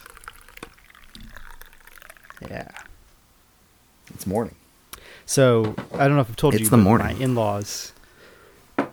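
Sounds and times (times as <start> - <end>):
coffee being poured into a mug: 0.0 - 3.0
speech: 2.4 - 2.9, 4.2 - 8.0.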